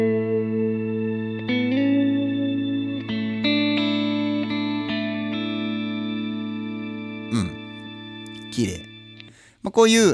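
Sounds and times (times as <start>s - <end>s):
electric guitar with shimmer reverb effect and light overdrive playing sustained chords: 0.0s - 9.2s
speech: 8.6s - 8.9s, 9.7s - 10.1s.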